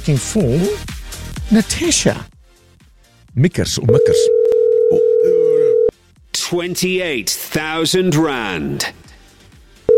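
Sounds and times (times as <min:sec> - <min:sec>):
speech: 0:00.0 - 0:02.3, 0:03.4 - 0:05.4, 0:06.5 - 0:09.1
telephone dial tone for a radio call-in: 0:04.0 - 0:05.9.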